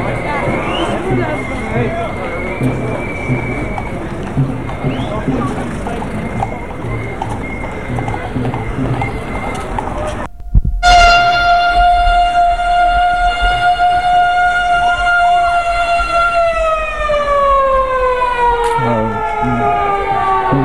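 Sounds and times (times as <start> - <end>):
faint voices: 0.0 - 10.3
portable siren wailing: 0.0 - 20.6
low rumble: 0.7 - 18.0.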